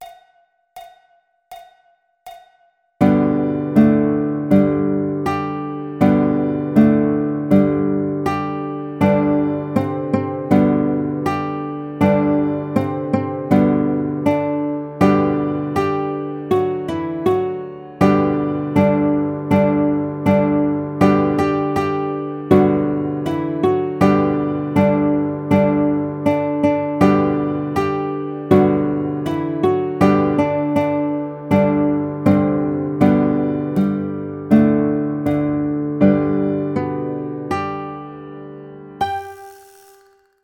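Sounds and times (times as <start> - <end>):
guitar melody: 3.0 - 40.3.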